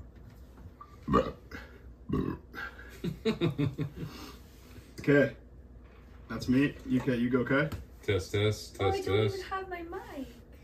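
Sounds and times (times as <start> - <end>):
low rumbling burps: 1.0 - 2.9
speech: 1.1 - 1.4, 3.2 - 4.4, 5.0 - 5.4, 6.3 - 10.4.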